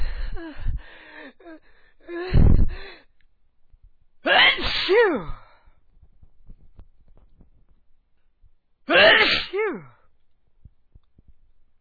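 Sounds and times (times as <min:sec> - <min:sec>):
speech: 0:01.3 - 0:02.5, 0:04.9 - 0:05.4, 0:08.9 - 0:09.9
person sneezing: 0:04.3 - 0:05.4, 0:08.9 - 0:09.9.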